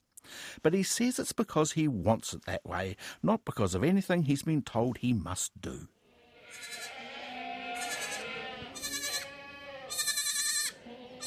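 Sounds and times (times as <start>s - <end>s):
speech: 0.6s - 6.0s
farm ambience: 4.8s - 11.2s
dairy goats bleating on a farm during kidding time: 6.1s - 11.2s.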